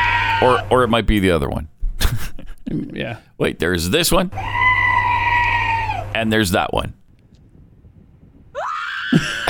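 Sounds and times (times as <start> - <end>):
recorded scream: 0.0 - 0.8, 4.4 - 6.2, 8.6 - 9.4
speech: 0.4 - 4.6, 6.2 - 7.0.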